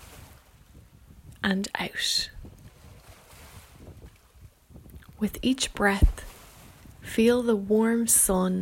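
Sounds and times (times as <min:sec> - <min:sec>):
ocean waves surging with rushing water: 0:00.0 - 0:00.7, 0:01.4 - 0:07.9
gusty wind noise: 0:00.0 - 0:08.6
speech: 0:01.4 - 0:02.4, 0:05.2 - 0:06.2, 0:07.1 - 0:08.6.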